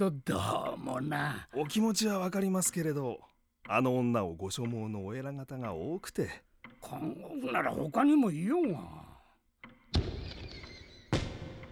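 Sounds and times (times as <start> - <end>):
speech: 0.0 - 9.0, 9.9 - 10.4
out-of-season fireworks booming: 10.0 - 11.6.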